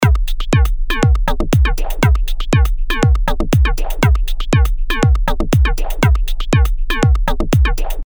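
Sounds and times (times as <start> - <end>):
dance music at 120 bpm: 0.0 - 8.0.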